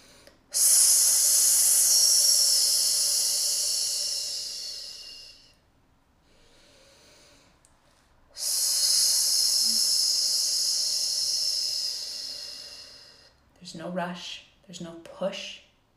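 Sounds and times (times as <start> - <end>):
slow hissing exhale through the mouth with an S sound: 0.0 - 5.6, 6.2 - 7.6, 8.3 - 13.4
speech: 13.7 - 15.6.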